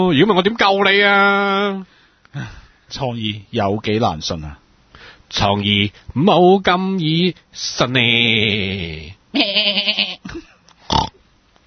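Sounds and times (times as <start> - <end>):
speech: 0.0 - 4.6, 5.3 - 10.5
sheep or goat bleating: 9.4 - 10.2.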